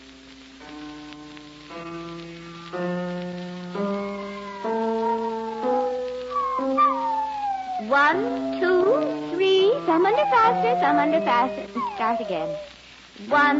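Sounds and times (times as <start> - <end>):
faint hiss: 0.0 - 13.5
piano being played during a piano lesson: 0.6 - 12.7
big fat spaniel howling along with a piano during a piano lesson: 3.8 - 12.8
speech: 8.1 - 8.5, 10.0 - 13.5.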